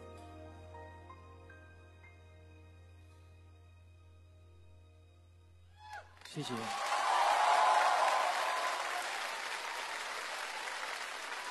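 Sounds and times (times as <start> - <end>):
applause from an audience cheering two teachers at an event: 6.2 - 11.5
speech: 6.4 - 6.9.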